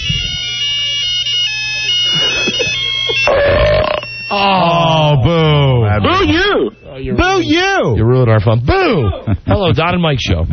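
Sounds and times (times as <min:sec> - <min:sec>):
mobile phone ringtone playing electronic song melody: 0:00.0 - 0:08.0
low hum: 0:00.0 - 0:10.5
laughter: 0:01.4 - 0:10.0
speech: 0:04.3 - 0:04.6, 0:06.0 - 0:10.5.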